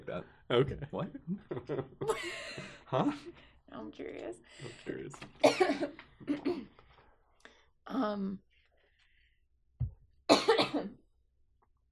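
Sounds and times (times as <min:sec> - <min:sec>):
speech: 0:00.2 - 0:06.0
laughter: 0:00.6 - 0:03.3
person coughing: 0:05.4 - 0:06.7, 0:10.3 - 0:11.0.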